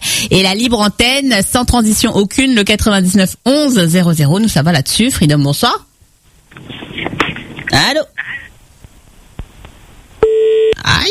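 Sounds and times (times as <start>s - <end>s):
speech: 0.2s - 5.9s, 7.7s - 8.2s, 10.8s - 11.1s
telephone busy tone on a phone-in line after the caller hangs up: 10.2s - 10.8s.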